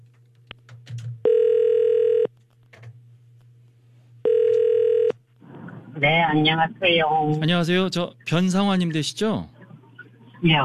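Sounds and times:
low constant hum: 0.0s - 10.6s
telephone ringback tone: 1.2s - 2.3s, 4.2s - 5.1s
speech: 6.0s - 9.6s, 10.4s - 10.6s.

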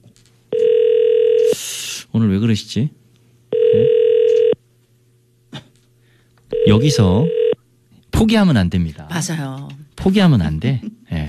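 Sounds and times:
electronic ringback tone of an outgoing radio station phone call: 0.5s - 1.6s, 3.5s - 4.6s, 6.5s - 7.6s
speech: 2.2s - 3.0s, 6.7s - 7.4s, 8.2s - 11.2s.

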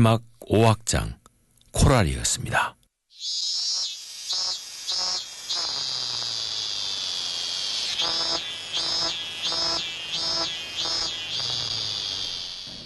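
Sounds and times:
speech: 0.0s - 1.2s, 1.8s - 3.5s
cicadas buzzing in summer: 3.1s - 12.8s.

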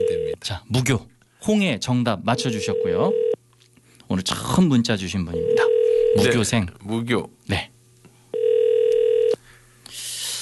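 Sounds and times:
speech: 0.4s - 3.2s, 4.1s - 7.7s
telephone ringback tone on an outgoing call over an ordinary phone line: 2.4s - 3.4s, 5.4s - 6.2s, 8.4s - 9.4s.

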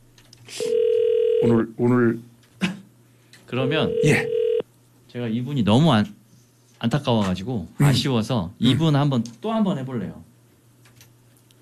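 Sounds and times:
steady electronic ringback tone of an unanswered phone call: 0.6s - 1.6s, 3.6s - 4.6s
speech: 1.4s - 2.3s, 3.5s - 4.4s, 5.1s - 6.2s, 6.8s - 10.3s.

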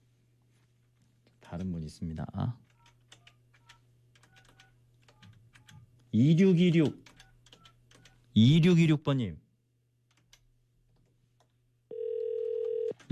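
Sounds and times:
speech: 1.5s - 2.7s, 6.2s - 7.0s, 8.4s - 9.4s
telephone ringback tone: 11.9s - 13.0s.

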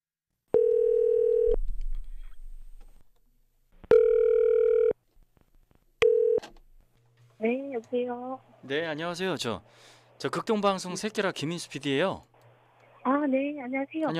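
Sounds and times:
telephone ringback tone while placing a call: 0.5s - 1.6s, 3.9s - 5.0s, 6.0s - 6.4s
speech: 7.4s - 12.3s, 13.2s - 14.1s.

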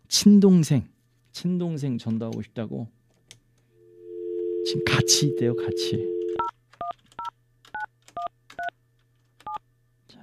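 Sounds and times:
speech: 0.1s - 3.0s, 4.7s - 6.2s
telephone keypad dialing tones: 4.2s - 6.5s.

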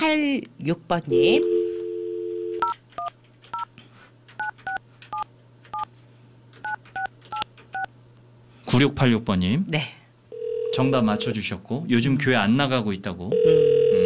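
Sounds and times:
speech: 0.0s - 1.6s, 8.7s - 10.0s, 10.8s - 13.6s
telephone dial tone: 1.4s - 2.7s, 10.4s - 11.2s, 13.4s - 14.0s.

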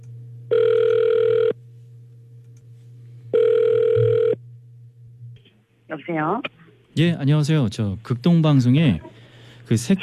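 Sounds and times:
low constant hum: 0.0s - 10.0s
telephone ringback tone: 0.5s - 1.6s, 3.3s - 4.4s
speech: 6.0s - 9.1s, 9.7s - 10.0s.

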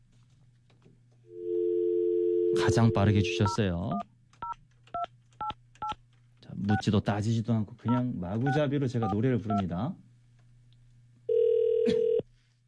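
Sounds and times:
faint steady low hum: 0.0s - 12.6s
telephone ringback tone: 1.4s - 3.4s, 11.3s - 12.2s
speech: 2.6s - 4.1s, 6.7s - 10.0s.

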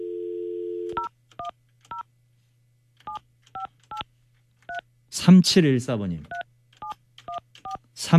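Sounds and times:
telephone dial tone: 0.0s - 1.0s
speech: 5.2s - 6.4s.

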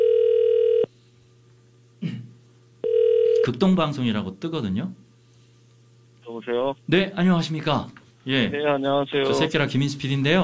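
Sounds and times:
outgoing telephone call ringback tone: 0.0s - 0.9s, 2.8s - 3.5s
speech: 3.5s - 5.0s, 6.4s - 10.4s.

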